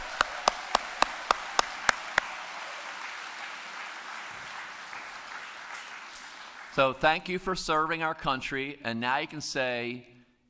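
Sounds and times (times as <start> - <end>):
audience clapping for veterans: 0.0 - 7.2
speech: 6.8 - 10.1.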